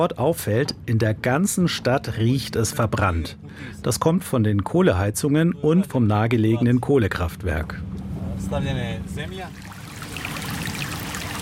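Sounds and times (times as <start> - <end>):
speech: 0.0 - 9.7
small stream trickling past meadows outside Pljevlja Montenegro: 9.3 - 11.3.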